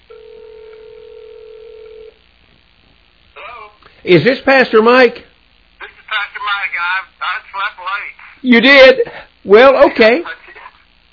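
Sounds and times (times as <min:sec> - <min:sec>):
faint telephone line hiss: 0:00.0 - 0:11.1
telephone ring tone through a handset: 0:00.1 - 0:02.2
speech: 0:04.0 - 0:05.3, 0:08.4 - 0:10.4.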